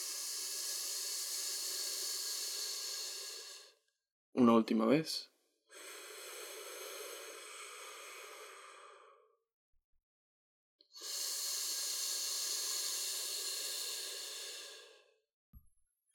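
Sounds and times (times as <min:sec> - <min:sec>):
air exhaled hissing through the teeth in a pelvic floor breathing exercise: 0:00.0 - 0:03.8, 0:05.7 - 0:09.3, 0:11.0 - 0:15.2
speech: 0:04.4 - 0:05.3.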